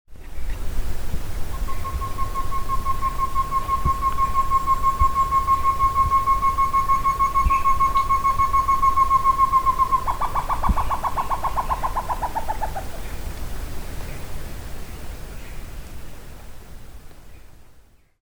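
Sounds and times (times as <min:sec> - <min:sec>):
Chamaeza campanisona calling: 0:00.2 - 0:13.4.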